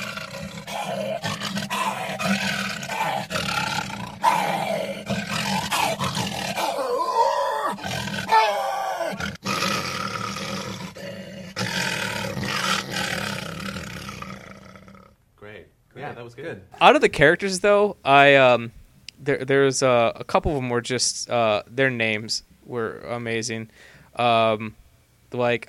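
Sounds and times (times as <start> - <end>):
man imitating a lion roar growling into a garbage can: 0.0 - 15.2
speech: 16.4 - 25.6.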